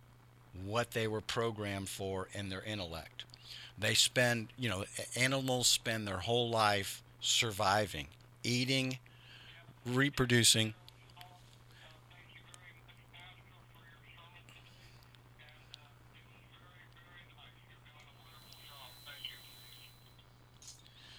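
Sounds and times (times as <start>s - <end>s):
steady low electrical hum: 0.1s - 21.1s
speech: 0.6s - 9.1s, 9.8s - 10.8s
telephone ringing with a repeating electronic tone: 18.0s - 20.2s.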